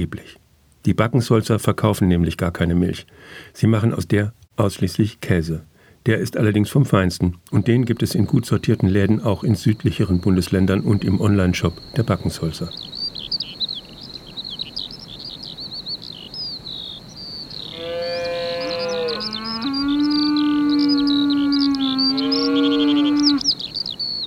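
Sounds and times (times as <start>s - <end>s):
speech: 0.0s - 12.9s
bird twittering: 7.6s - 24.2s
cow on pasture mooing: 17.6s - 23.5s.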